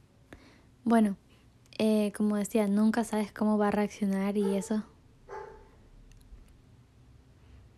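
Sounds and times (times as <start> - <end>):
steady low hum: 0.0 - 7.7
speech: 0.8 - 1.2, 1.8 - 4.9
dog bark: 4.4 - 5.7.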